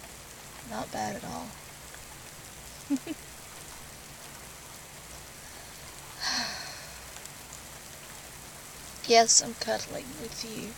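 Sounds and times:
soft rain pattering on a pickup truck: 0.0s - 10.7s
speech: 0.7s - 1.7s, 2.9s - 3.3s, 9.1s - 10.7s
breathy sigh-like burst: 5.4s - 7.0s.

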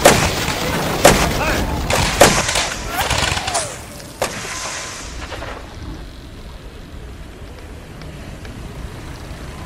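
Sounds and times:
cannon fire: 0.0s - 5.4s.

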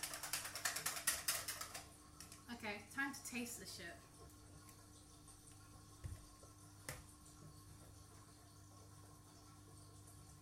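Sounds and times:
dishwasher running with hissing clicking pulses: 0.0s - 10.4s
speech: 2.5s - 4.1s.

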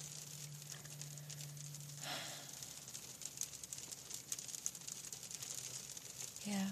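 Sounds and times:
low hum: 0.0s - 4.2s
sharper drips: 0.0s - 6.7s
steady soft rain pattering: 0.0s - 6.7s
speech: 6.5s - 6.7s.

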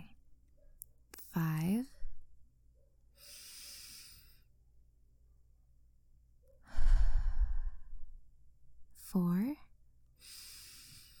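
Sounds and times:
deep breathing in and out during a breathing exercise: 3.2s - 4.5s, 6.6s - 8.3s, 10.2s - 11.1s
speech: 9.2s - 9.6s.

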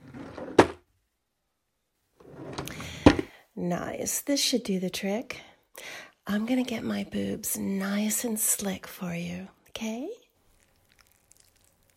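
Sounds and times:
bedside drawer pulled open and pushed shut: 0.0s - 0.8s, 2.2s - 3.3s
rummaging scrapes in a bedside drawer: 0.0s - 0.8s
speech: 3.6s - 10.2s.

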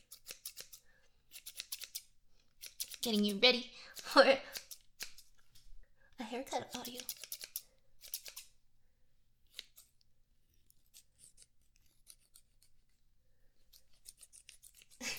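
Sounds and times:
scissors cutting bacon: 0.0s - 5.6s, 6.6s - 8.5s, 10.7s - 12.7s, 13.8s - 15.1s
speech: 3.0s - 4.6s, 6.3s - 7.2s.

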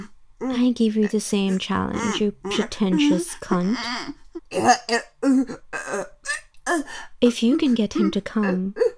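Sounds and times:
speech: 0.7s - 8.9s
person gagging and choking: 1.5s - 6.8s.

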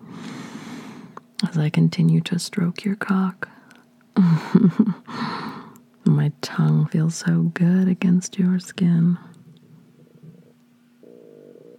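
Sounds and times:
speech: 1.4s - 3.6s, 4.2s - 5.3s, 6.1s - 9.3s
stomach growling: 9.4s - 11.7s.

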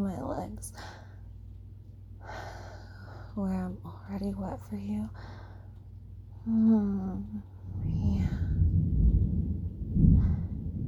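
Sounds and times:
speech: 0.0s - 1.1s, 3.4s - 5.4s, 6.4s - 8.3s
brief voiced hum: 6.4s - 7.4s
deep rolling thunder rumbling in a thunderstorm: 7.7s - 10.8s.

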